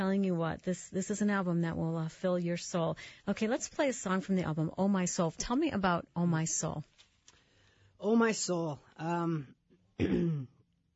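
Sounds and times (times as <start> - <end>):
speech: 0.0 - 6.9, 8.0 - 10.5
man coughing with a throat-clearing quality: 10.0 - 10.6.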